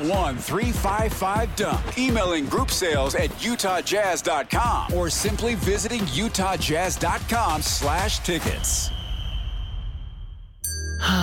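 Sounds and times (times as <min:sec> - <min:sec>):
speech: 0:00.0 - 0:09.0
bell ringing: 0:10.6 - 0:11.2.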